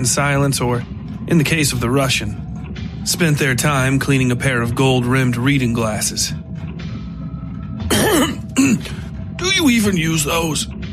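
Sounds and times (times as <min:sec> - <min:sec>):
speech: 0:00.0 - 0:06.5, 0:08.6 - 0:10.8
throat clearing: 0:07.9 - 0:09.1.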